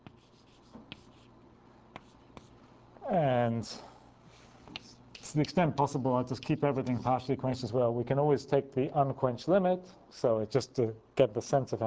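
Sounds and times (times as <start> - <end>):
scratching and scraping of writing out formulae: 0.0 - 1.3, 2.0 - 2.6
speech: 3.1 - 3.9, 5.3 - 11.8.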